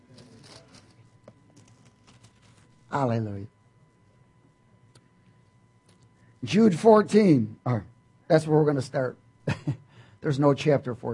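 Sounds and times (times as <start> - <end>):
Bible pages turning: 0.0 - 2.8
low steady hum: 0.0 - 11.1
speech: 2.9 - 3.6, 6.4 - 11.1.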